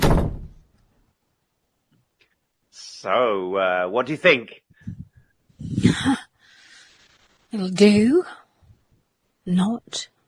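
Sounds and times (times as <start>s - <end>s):
dull heavy thud of a door being shut: 0.0s - 0.6s
speech: 2.8s - 4.6s, 5.8s - 6.3s, 7.5s - 8.4s, 9.5s - 10.1s.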